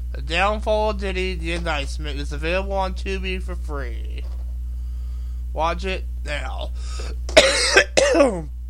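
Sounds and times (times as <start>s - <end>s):
speech: 0.1s - 4.3s, 5.5s - 8.6s
rough throat-clearing coughs: 6.9s - 8.5s.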